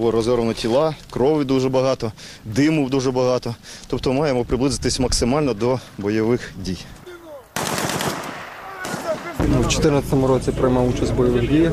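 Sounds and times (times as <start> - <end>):
speech: 0.0 - 7.0, 9.7 - 11.7
machine gun fire in combat training exercise: 7.6 - 9.8.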